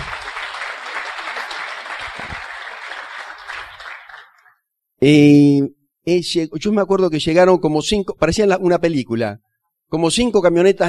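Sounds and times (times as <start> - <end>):
crowd applauding: 0.0 - 4.6
speech: 5.0 - 10.8.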